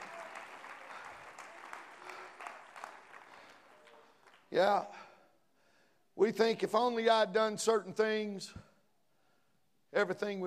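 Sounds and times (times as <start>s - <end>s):
audience clapping hands: 0.0s - 4.5s
speech: 4.5s - 5.1s, 6.2s - 8.7s, 9.9s - 10.4s.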